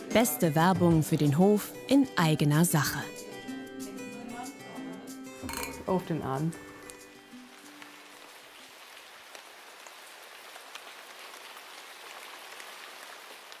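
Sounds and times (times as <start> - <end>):
speech: 0.1 - 3.2, 5.9 - 6.7
rain falling on a hard surface at a farm in late summer: 6.3 - 13.5.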